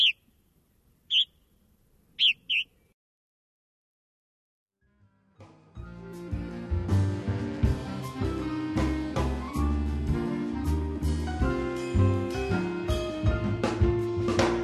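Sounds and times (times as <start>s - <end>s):
purple martin burry chirps: 0.0s - 0.2s, 1.1s - 1.4s, 2.2s - 2.9s
music: 4.8s - 14.6s.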